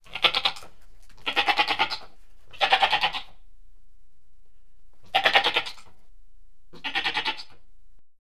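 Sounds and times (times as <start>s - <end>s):
goats bleating: 0.1s - 3.3s, 5.1s - 5.9s, 6.8s - 7.6s.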